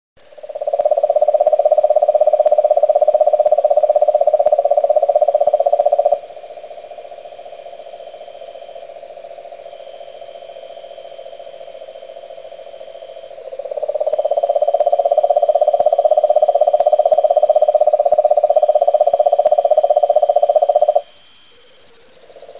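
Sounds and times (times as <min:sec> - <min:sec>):
cane toad Rhinella marina calling: 0:00.2 - 0:22.5.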